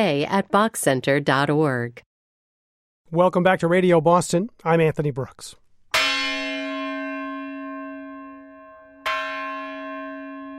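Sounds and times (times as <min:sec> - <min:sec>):
speech: 0:00.0 - 0:02.1, 0:03.1 - 0:05.6
bell of a 100-foot red lightship docked in East Boston: 0:05.9 - 0:10.5.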